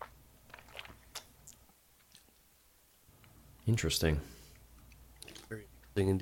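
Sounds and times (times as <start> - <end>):
low hum: 0.0 - 6.2
person sipping a grapefruit hard seltzer: 0.5 - 2.4, 4.5 - 5.8
soft wet slurps and mouth clicks: 0.5 - 2.5, 4.8 - 5.9
speech: 3.7 - 4.4, 5.5 - 6.2.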